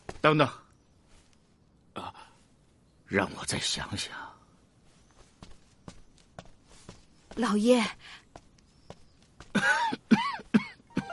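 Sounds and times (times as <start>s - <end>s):
speech: 0.2s - 0.6s, 3.1s - 4.3s, 7.4s - 8.2s
man with a chill coughing: 9.5s - 11.1s.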